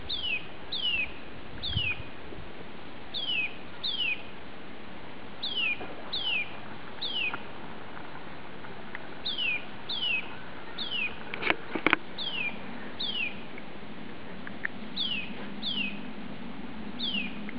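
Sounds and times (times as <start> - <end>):
Brgljez spring call: 0.1 - 2.1, 3.1 - 4.3, 5.4 - 7.5, 9.2 - 11.3, 12.2 - 13.5, 15.0 - 16.1, 17.0 - 17.4.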